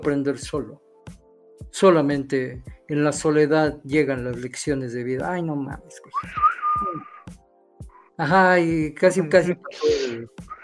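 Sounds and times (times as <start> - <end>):
speech: 0.0 - 0.9, 1.7 - 7.1, 8.2 - 10.5
person whistling a western movie theme style melody: 6.1 - 7.2.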